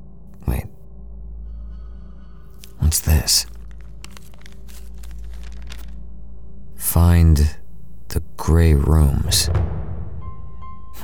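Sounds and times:
sheet of paper with a written message rustling as it is unfolded: 0:02.6 - 0:05.9
speech: 0:02.9 - 0:03.6, 0:07.0 - 0:09.8.

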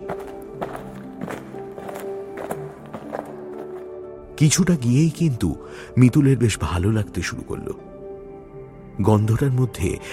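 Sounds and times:
footsteps walking on a moonlit hillside: 0:00.0 - 0:04.0
speech: 0:04.4 - 0:07.9, 0:09.0 - 0:10.1.

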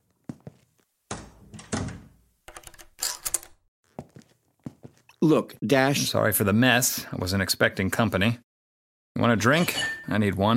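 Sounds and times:
door shutting: 0:01.1 - 0:03.6
chain lock being slid and latched: 0:02.5 - 0:03.6
speech: 0:05.2 - 0:08.5, 0:09.2 - 0:10.5.

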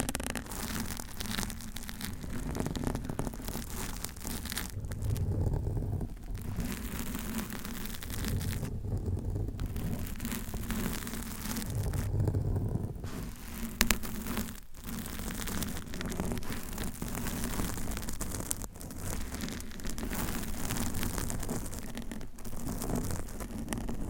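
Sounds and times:
long nails scratching against a microphone: 0:00.0 - 0:24.0.

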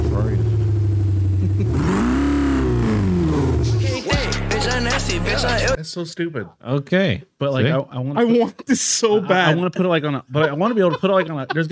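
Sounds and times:
car engine revving: 0:00.0 - 0:05.8
laughter: 0:01.4 - 0:01.8, 0:10.3 - 0:11.6
speech: 0:05.3 - 0:11.6.

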